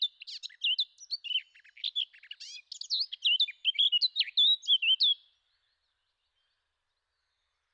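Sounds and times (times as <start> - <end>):
Eurasian blackcap song: 0.0 - 5.2.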